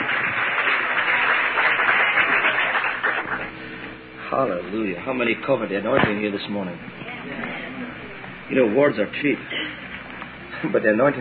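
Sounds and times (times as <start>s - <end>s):
audience applauding: 0.0s - 3.6s
speech: 4.3s - 7.4s, 8.5s - 9.6s, 10.6s - 11.2s.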